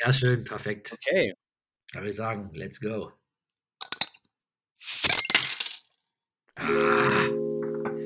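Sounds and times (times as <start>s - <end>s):
speech: 0.0s - 3.2s, 6.6s - 7.4s
beer bottle being opened with clicks and fizzy hiss: 3.8s - 4.1s, 4.8s - 5.8s.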